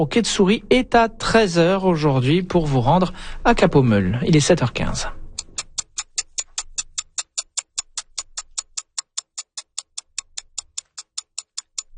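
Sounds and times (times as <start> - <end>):
speech: 0.0 - 5.2
clock ticking: 5.3 - 11.9.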